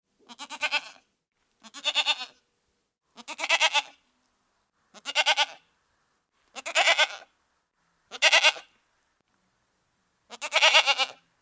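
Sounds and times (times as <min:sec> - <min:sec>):
goats bleating: 0:00.3 - 0:01.0, 0:01.6 - 0:02.3, 0:03.2 - 0:04.0, 0:05.0 - 0:05.6, 0:06.6 - 0:07.3, 0:08.1 - 0:08.7, 0:10.3 - 0:11.2.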